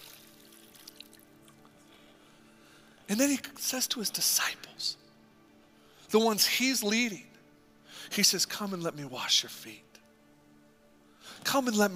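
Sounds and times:
water pouring into a bucket: 0.0 - 1.2
speech: 3.1 - 5.0, 6.1 - 7.3, 8.0 - 9.9, 11.4 - 11.9.

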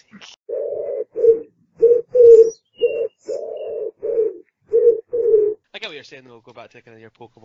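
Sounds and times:
pigeon cooing: 0.5 - 5.6
faint higher chirps: 2.2 - 3.8
speech: 6.2 - 7.4.

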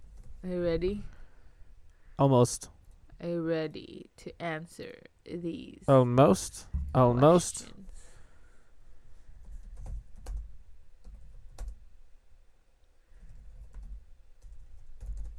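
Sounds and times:
low rumble: 0.0 - 3.3, 6.6 - 10.4
speech: 0.4 - 1.2, 2.2 - 7.8
typing on a computer keyboard: 9.4 - 11.8, 13.5 - 15.3.

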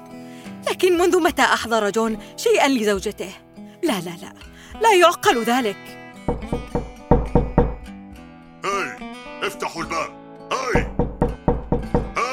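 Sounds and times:
speech: 0.7 - 6.8
loud rapid knocking on a door: 6.3 - 7.9, 10.8 - 12.2.

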